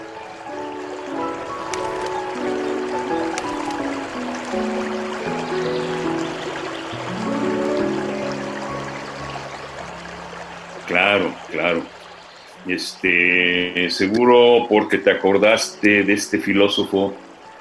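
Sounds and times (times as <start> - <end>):
flowing river water: 0.0 - 17.5
speech: 12.7 - 17.2.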